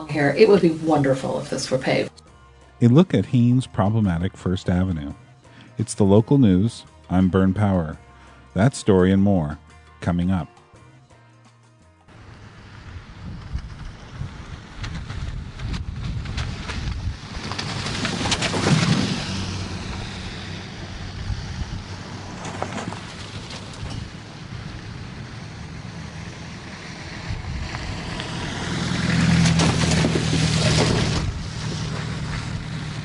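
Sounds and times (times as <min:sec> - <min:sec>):
speech: 0:00.1 - 0:02.1, 0:02.8 - 0:05.2, 0:05.8 - 0:10.5
vehicles driving through freshly formed 8-inch-deep potholes after a deep freeze: 0:12.1 - 0:33.0.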